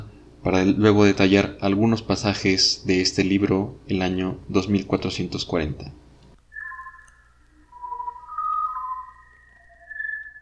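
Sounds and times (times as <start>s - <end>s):
speech: 0.4s - 6.0s
eerie overlapping electronic whistling tones in a NASA space sound recording: 6.4s - 10.3s
low hum: 6.4s - 10.3s.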